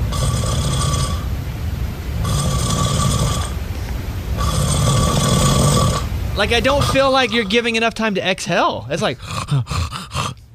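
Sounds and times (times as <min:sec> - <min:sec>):
person snoring during sleep: 0:00.1 - 0:01.3, 0:02.2 - 0:03.5, 0:04.4 - 0:07.7, 0:09.1 - 0:10.5
speech: 0:06.4 - 0:10.1.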